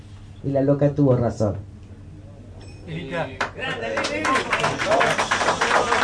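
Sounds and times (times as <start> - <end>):
speech: 0.4 - 1.7, 2.9 - 6.0
crowd applause: 3.4 - 6.0.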